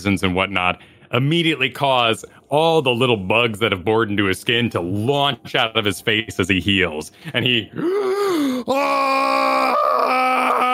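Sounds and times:
speech: 0:00.0 - 0:09.8
voice imitating a man sitting up and screaming: 0:07.8 - 0:10.7.

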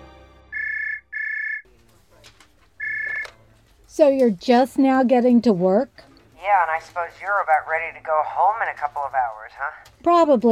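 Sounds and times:
telephone ringing: 0:00.5 - 0:01.7, 0:02.8 - 0:03.4
noise: 0:01.7 - 0:10.4
speech: 0:04.0 - 0:10.4.

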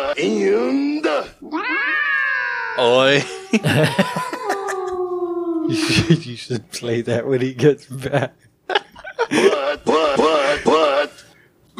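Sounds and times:
speech: 0:00.0 - 0:02.1, 0:02.8 - 0:04.4, 0:05.7 - 0:08.4
cat meowing: 0:01.4 - 0:05.9
laughter: 0:03.1 - 0:05.0, 0:05.7 - 0:06.6, 0:07.9 - 0:11.1.

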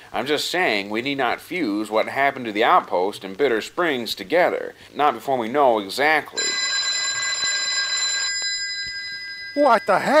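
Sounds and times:
speech: 0:00.1 - 0:06.7, 0:09.6 - 0:10.1
office telephone ringing: 0:06.4 - 0:10.1.

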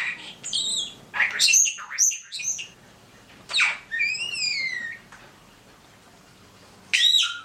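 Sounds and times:
pet starling whistling, squeaking and chattering: 0:00.0 - 0:02.8, 0:03.5 - 0:05.0, 0:06.9 - 0:07.4.

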